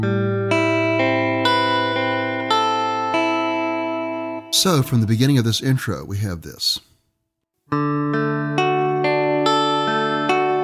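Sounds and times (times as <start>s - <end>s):
guitar playing an E minor 9 chord one string at a time: 0.0s - 5.4s, 7.7s - 10.6s
speech: 4.5s - 6.9s.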